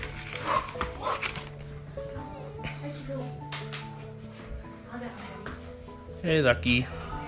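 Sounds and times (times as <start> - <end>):
pet dog barking and yipping: 0.4 - 1.4
speech: 6.2 - 7.0.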